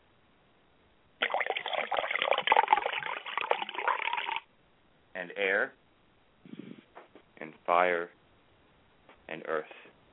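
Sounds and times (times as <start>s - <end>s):
water poured out as a ritual offering: 1.2s - 4.5s
speech: 5.2s - 5.8s, 7.4s - 8.2s, 9.3s - 9.8s.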